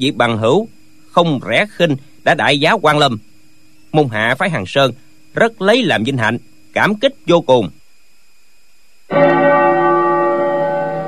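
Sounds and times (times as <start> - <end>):
speech: 0.0 - 3.3, 3.9 - 7.8
bell struck at a nuns' sect ceremony for a new leader: 9.1 - 11.0.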